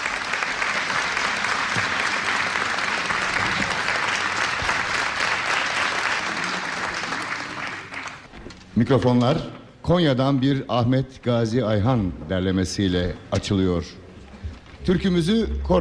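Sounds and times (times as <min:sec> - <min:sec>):
audience applause for a choir and its conductor after a folk-song performance: 0:00.0 - 0:08.3
speech: 0:08.8 - 0:14.0, 0:14.8 - 0:15.7.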